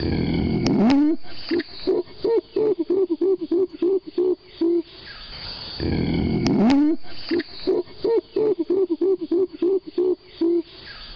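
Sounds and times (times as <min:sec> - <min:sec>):
adult female gorilla hooting: 0:00.0 - 0:04.9, 0:05.8 - 0:10.8.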